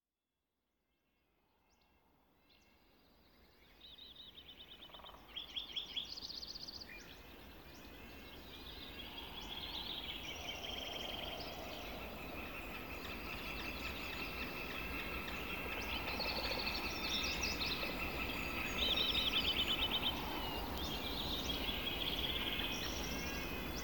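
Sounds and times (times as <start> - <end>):
Sierras ambience: 7.1 - 23.8.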